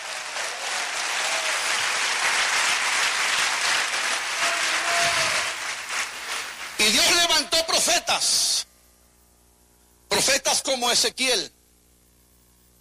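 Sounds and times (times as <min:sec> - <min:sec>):
faint voices or cheers within applause: 0:00.0 - 0:01.9, 0:04.2 - 0:05.7
audience applauding: 0:00.0 - 0:07.3
speech: 0:07.7 - 0:08.5, 0:10.2 - 0:11.6.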